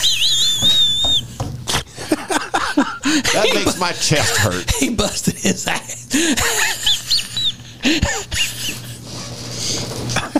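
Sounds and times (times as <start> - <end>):
voice imitating a thin wavering high whistle: 0.0 - 1.3
laughter: 1.7 - 9.0
speech: 3.3 - 6.9.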